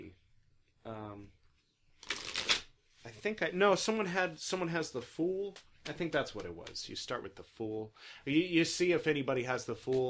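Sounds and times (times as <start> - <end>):
speech: 0.9 - 1.4, 3.2 - 10.0
tarot cards being shuffled: 2.0 - 2.7.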